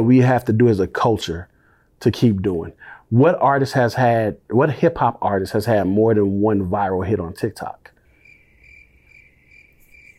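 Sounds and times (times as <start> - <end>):
speech: 0.0 - 7.9
crickets chirping: 8.1 - 10.1.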